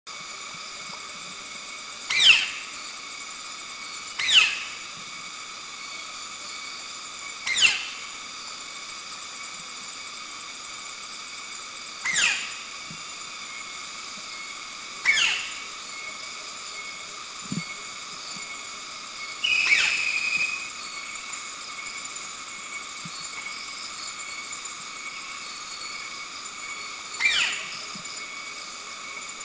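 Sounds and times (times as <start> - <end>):
White-bellied Woodpecker Dryocopus javensis call in Subic Bay: 2.1 - 2.7, 4.2 - 4.8, 7.5 - 8.0, 12.0 - 12.7, 15.0 - 15.7, 19.4 - 20.8, 27.2 - 28.0.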